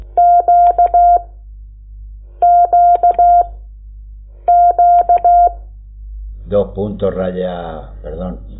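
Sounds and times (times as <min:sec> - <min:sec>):
Morse code tones for the letter Q: 0:00.2 - 0:01.3, 0:02.4 - 0:03.5, 0:04.5 - 0:05.6.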